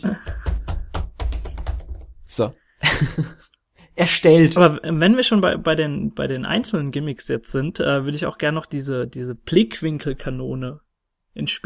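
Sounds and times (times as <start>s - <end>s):
speech: 0.0s - 0.3s, 2.3s - 10.8s, 11.4s - 11.6s
keyboard typing: 0.0s - 2.5s
loud computer clicking: 0.2s - 2.2s
laughter: 2.8s - 3.5s.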